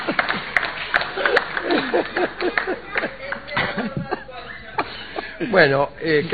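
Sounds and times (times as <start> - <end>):
small group clapping: 0.0 - 4.2
people chuckling: 0.0 - 5.7
speech: 5.6 - 6.3.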